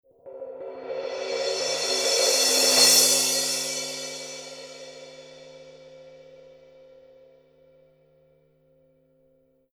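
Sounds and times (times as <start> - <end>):
Paiste 900 series 17 crash cymbal roll: 0.2 - 6.9.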